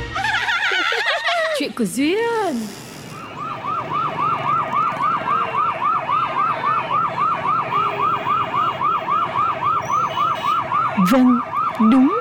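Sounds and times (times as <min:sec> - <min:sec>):
laughter: 0:00.1 - 0:01.7
faint traffic rumble: 0:01.5 - 0:12.1
speech: 0:01.8 - 0:02.9, 0:11.1 - 0:12.1
ambulance siren wailing while rushing along a street: 0:03.1 - 0:12.1.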